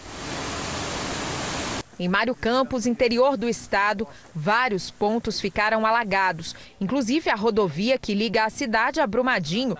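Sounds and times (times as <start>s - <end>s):
floodwater rushing out of an overflowing drainage channel: 0.0s - 1.8s
speech: 2.0s - 9.7s.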